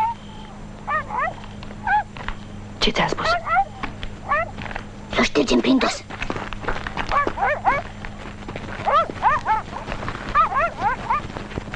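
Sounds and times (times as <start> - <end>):
low steady hum: 0.0 - 11.7
dog barking excitedly in high yipping bursts: 0.9 - 2.1, 3.2 - 4.6, 7.1 - 7.9, 8.8 - 11.3
speech: 2.8 - 3.5, 5.4 - 6.2.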